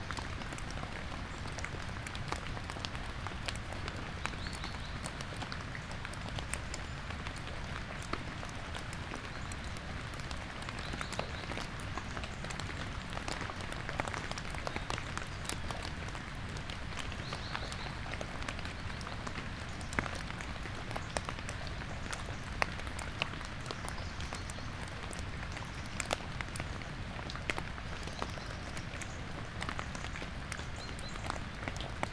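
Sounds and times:
rain dripping from trees onto leaves and surfaces: 0.0 - 32.1.

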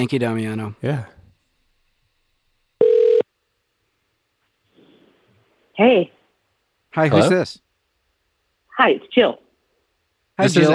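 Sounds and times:
speech: 0.0 - 1.2, 5.8 - 6.2, 6.9 - 7.6, 8.8 - 9.4, 10.4 - 10.7
telephone dialing beep: 2.8 - 3.2.

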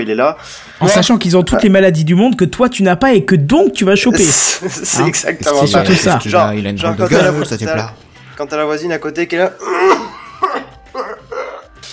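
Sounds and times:
speech: 0.0 - 10.1
laughter: 4.2 - 6.0
person imitating a neighbour coughing: 9.6 - 11.7.

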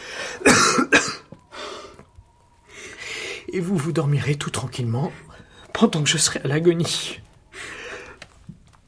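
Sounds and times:
choking cough: 0.4 - 1.2
speech: 3.6 - 7.3.

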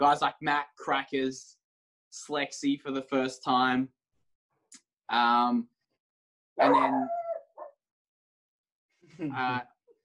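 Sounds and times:
speech: 0.0 - 4.0, 5.1 - 5.7, 6.6 - 7.2, 9.2 - 9.7
dog barking: 6.6 - 7.8.

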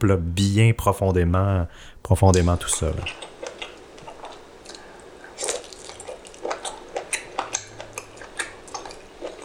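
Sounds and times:
speech: 0.0 - 3.3
quiet hiss: 0.0 - 9.4
wet mouth noises of someone eating salmon and tuna dipped in sauce: 2.3 - 9.4.

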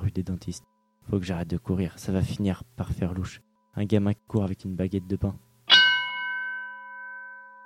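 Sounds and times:
speech: 0.2 - 5.5
church bell tolling: 5.7 - 7.6.

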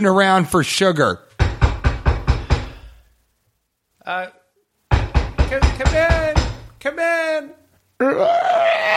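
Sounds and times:
speech: 0.0 - 1.3, 4.0 - 4.4, 5.5 - 8.9
knocking on the door of a home: 1.4 - 2.8, 4.9 - 6.7.

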